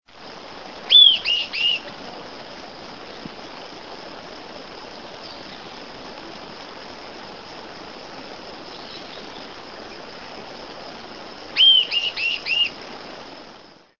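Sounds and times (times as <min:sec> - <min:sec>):
Tolmomyias poliocephalus calling: 0:00.9 - 0:01.9, 0:05.0 - 0:05.9, 0:08.6 - 0:10.5, 0:11.5 - 0:12.8.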